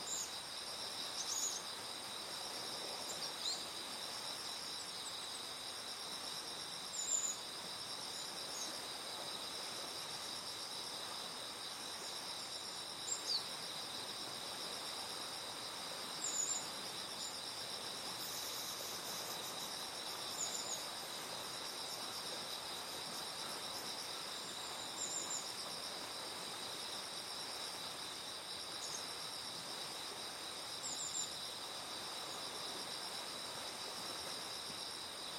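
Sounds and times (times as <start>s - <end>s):
insects trilling in a forest: 0.0s - 35.3s
river water flowing by the Tama River forest: 0.0s - 35.3s.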